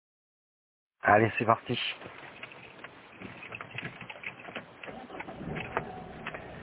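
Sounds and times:
speech: 1.1 - 2.2
faint rattles and small clicks inside a car: 2.0 - 6.6
road and engine drone inside a moving car: 2.0 - 6.6.

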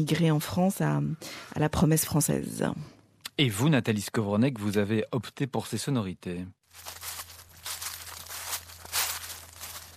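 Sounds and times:
speech: 0.0 - 7.0
footsteps on dead leaves or dry wood: 6.7 - 9.9.

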